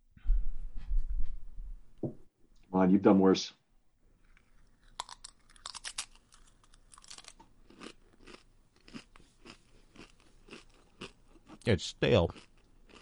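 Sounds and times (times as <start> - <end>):
speech: 2.8 - 3.6, 11.7 - 12.5
crunching and chewing a spicy tortilla chip: 4.2 - 11.7.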